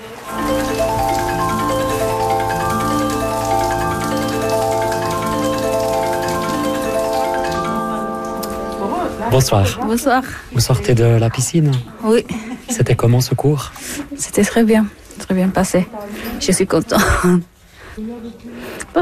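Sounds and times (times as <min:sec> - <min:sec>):
shower water spray running: 0:00.0 - 0:10.2
speech: 0:09.3 - 0:18.9.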